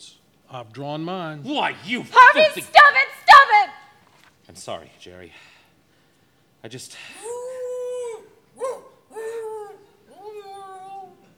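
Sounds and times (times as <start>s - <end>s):
speech: 0.0s - 3.1s, 4.5s - 5.6s, 6.6s - 7.3s
dog howling: 7.2s - 11.3s.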